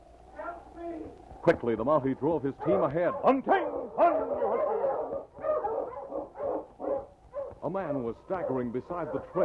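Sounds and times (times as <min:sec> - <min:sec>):
speech: 0:01.1 - 0:05.2, 0:07.7 - 0:09.4
dog barking in quick excited bursts: 0:02.6 - 0:07.7, 0:08.4 - 0:09.4.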